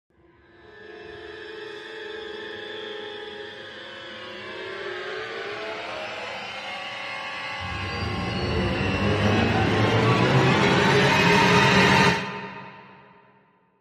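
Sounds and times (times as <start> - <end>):
dramatic string sting: 7.6 - 13.1.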